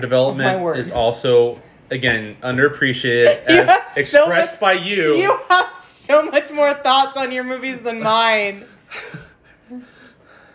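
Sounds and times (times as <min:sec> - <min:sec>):
speech: 0:00.0 - 0:09.9
person panting out of breath: 0:08.7 - 0:10.5.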